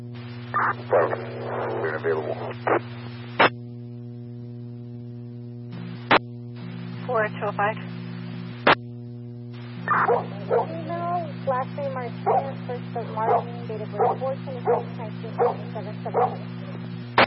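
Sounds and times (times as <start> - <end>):
steady electrical hum: 0.0 - 17.2
speech: 0.6 - 3.0, 7.1 - 8.0, 12.0 - 16.6
dog barking: 9.9 - 10.8, 12.2 - 12.6, 13.3 - 16.8.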